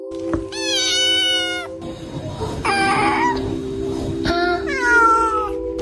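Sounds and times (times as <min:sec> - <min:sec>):
cat meowing: 0:00.2 - 0:01.8, 0:02.7 - 0:03.4, 0:04.3 - 0:05.6.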